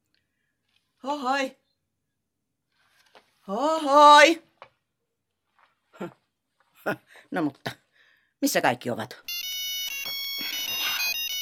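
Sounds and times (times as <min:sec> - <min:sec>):
speech: 0:01.0 - 0:01.6, 0:03.5 - 0:04.5, 0:06.0 - 0:06.2, 0:06.8 - 0:07.8, 0:08.4 - 0:09.3
telephone ringing with an electronic ringtone: 0:09.3 - 0:11.4.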